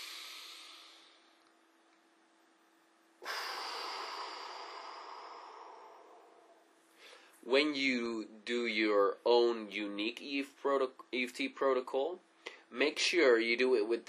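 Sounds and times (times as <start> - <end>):
slow deep breath in and out during a guided emotional-tapping exercise: 0.0 - 1.4, 3.2 - 7.4
speech: 7.4 - 14.0.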